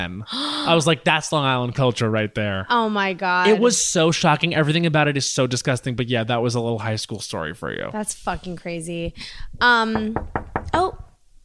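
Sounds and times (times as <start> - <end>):
speech: 0.0 - 10.8
firm knocks on a door: 9.8 - 11.2.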